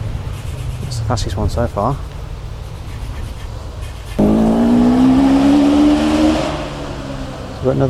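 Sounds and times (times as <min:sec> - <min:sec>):
speech: 0:01.1 - 0:02.2, 0:07.6 - 0:07.8
race car crossing the finish line of a track at 102 miles an hour: 0:04.2 - 0:07.8.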